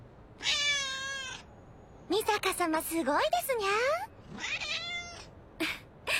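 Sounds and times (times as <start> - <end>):
cat meowing: 0.4 - 1.5, 4.3 - 5.3
speech: 2.1 - 4.6.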